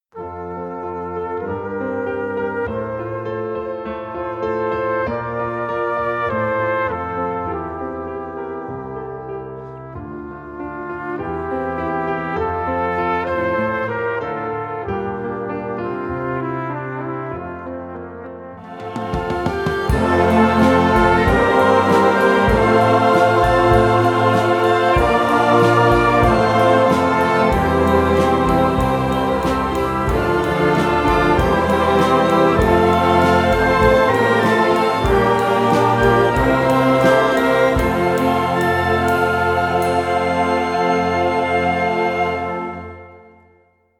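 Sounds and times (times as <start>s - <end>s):
piano in F: 0.0s - 43.7s
brass band playing in F: 0.2s - 43.4s
alphorns in F: 18.6s - 42.8s
yodel choir in F: 18.6s - 43.4s.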